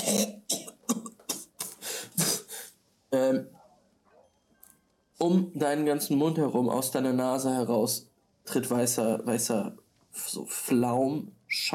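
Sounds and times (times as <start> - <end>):
person coughing: 0.0 - 2.5
speech: 0.1 - 0.4, 5.2 - 11.7.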